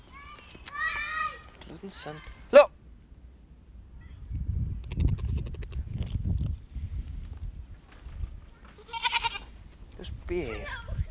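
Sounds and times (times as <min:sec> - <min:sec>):
faint outdoor background: 0:00.0 - 0:11.0
speech: 0:01.7 - 0:02.6, 0:10.3 - 0:10.8
goat bleating: 0:08.8 - 0:09.5.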